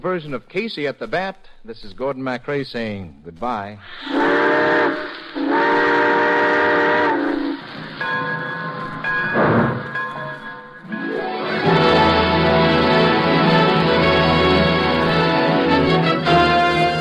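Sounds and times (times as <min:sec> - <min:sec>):
speech: 0:00.0 - 0:05.9
rumble and hiss of a train pulling away: 0:00.0 - 0:16.9
steam train whistle blasts as train pulls out: 0:03.9 - 0:07.6, 0:11.0 - 0:16.9.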